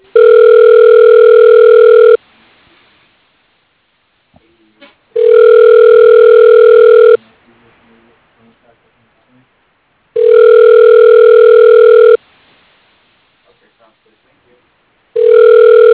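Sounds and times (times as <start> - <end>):
telephone ringback tones after a call is dialed: 0.1 - 2.2, 5.2 - 7.2, 10.2 - 12.2, 15.2 - 15.9.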